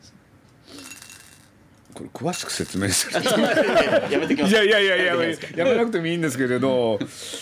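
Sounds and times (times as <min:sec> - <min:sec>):
three dice rattling in a teacup-like ceramic cup: 0:00.7 - 0:01.6, 0:02.3 - 0:03.1
speech: 0:02.0 - 0:07.3
laughter: 0:03.0 - 0:05.9.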